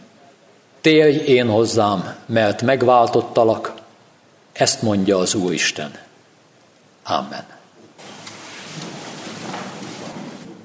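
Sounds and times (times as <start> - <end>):
speech: 0.8 - 3.7, 4.6 - 6.1, 7.0 - 7.6
steady dense rain pouring: 8.0 - 10.5.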